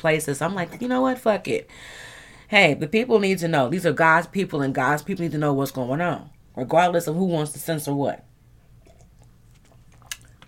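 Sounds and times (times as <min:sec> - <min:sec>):
speech: 0:00.0 - 0:08.3
low steady hum: 0:00.0 - 0:10.4
sipping a drink with soft wet mouth noises: 0:08.7 - 0:10.4.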